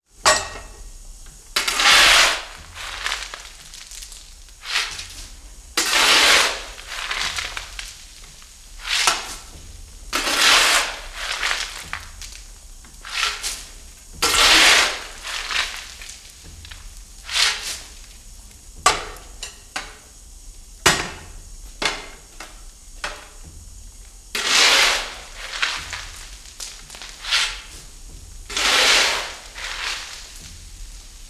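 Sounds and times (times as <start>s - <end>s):
coal shovel at a steam pumping station: 1.6s - 18.2s, 24.3s - 31.2s.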